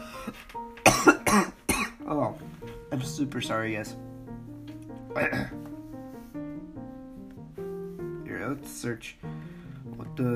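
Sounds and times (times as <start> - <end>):
person coughing harsh, raspy bursts: 0.8 - 2.0, 5.2 - 5.6
speech: 3.2 - 4.1, 5.2 - 5.7, 8.5 - 9.3, 10.2 - 10.3.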